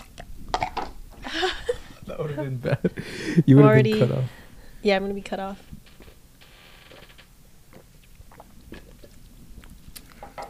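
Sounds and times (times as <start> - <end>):
laughter: 1.3 - 4.2
speech: 2.2 - 5.8
gulps and swallows: 7.7 - 10.4
person sipping a bomb shot drink made with light beer: 7.7 - 10.4.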